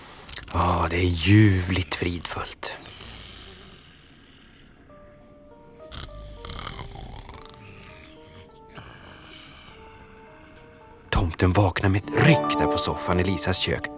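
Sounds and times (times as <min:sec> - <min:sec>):
speech: 0:00.5 - 0:02.8, 0:11.4 - 0:13.9
soft sustained music: 0:00.5 - 0:13.9
deep rasping snores from someone lying on a sofa: 0:02.7 - 0:04.8, 0:05.8 - 0:10.4.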